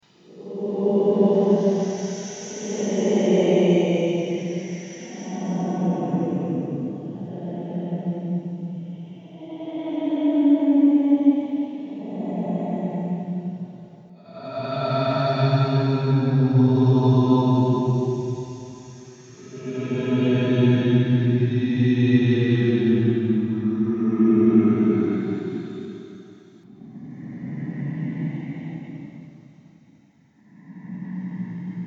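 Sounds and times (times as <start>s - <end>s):
haunted mansion echoing ambience: 0.1s - 29.0s.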